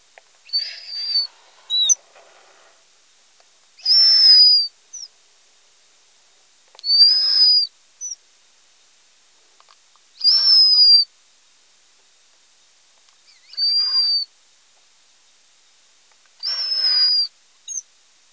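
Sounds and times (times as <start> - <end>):
juvenile mouse: 0.5 - 2.0, 3.8 - 5.1, 6.8 - 8.2, 10.2 - 11.1, 13.3 - 14.3, 16.4 - 17.8.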